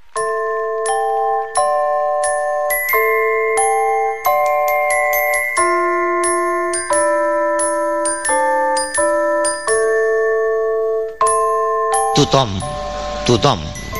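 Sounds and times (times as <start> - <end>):
small cathedral bells chiming a repeating melodic figure: 0.0 - 13.9
speech: 12.2 - 13.7.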